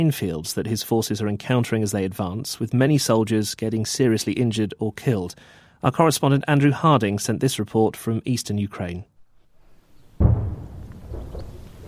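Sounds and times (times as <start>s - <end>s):
speech: 0.0s - 9.1s
artillery fire boom near the front lines in eastern Ukraine: 10.0s - 11.8s.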